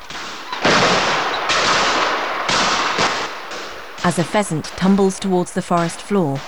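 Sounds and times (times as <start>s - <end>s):
barrage of shotgun fire into the air in a woodland clearing: 0.0s - 6.4s
speech: 4.0s - 6.4s.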